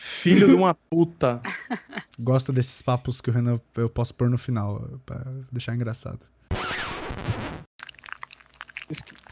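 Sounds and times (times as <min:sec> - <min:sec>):
speech: 0:00.2 - 0:06.4, 0:08.9 - 0:09.2
laughter: 0:00.3 - 0:00.7, 0:01.5 - 0:02.0
person chewing crunchy snack chips against the microphone: 0:07.8 - 0:09.3.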